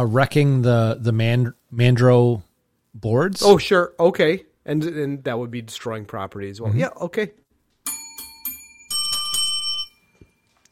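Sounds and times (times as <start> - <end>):
speech: 0.0 - 7.4
small bell ringing: 7.8 - 10.5.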